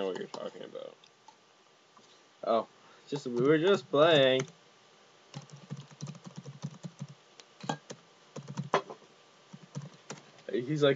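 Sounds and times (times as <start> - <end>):
speech: 0.0 - 1.2, 2.4 - 4.6, 10.6 - 10.9
typing on a computer keyboard: 5.3 - 7.2, 7.9 - 8.8, 9.6 - 10.3.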